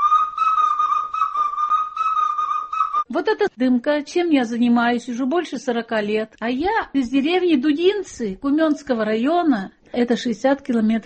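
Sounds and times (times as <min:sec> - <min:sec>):
toy whistle blown: 0:00.0 - 0:03.1
speech: 0:03.1 - 0:11.0.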